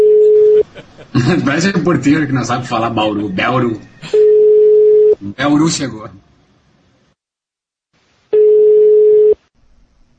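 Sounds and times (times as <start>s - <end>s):
telephone ringing tone on an outgoing call: 0.0s - 0.6s, 4.1s - 5.2s, 8.4s - 9.4s
laughter: 0.2s - 1.8s
speech: 1.2s - 4.3s, 5.2s - 6.2s.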